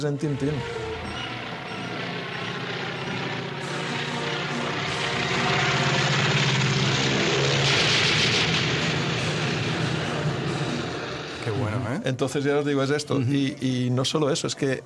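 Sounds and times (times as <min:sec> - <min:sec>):
speech: 0:00.0 - 0:00.8, 0:11.9 - 0:14.8
propeller airplane engine drone from a film scene: 0:00.1 - 0:12.0.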